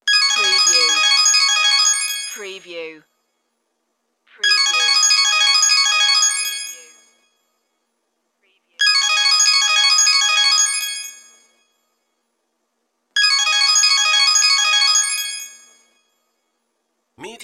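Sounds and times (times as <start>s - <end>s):
cell phone ringing: 0.1s - 2.7s, 4.4s - 7.2s, 8.8s - 11.3s, 13.2s - 15.7s.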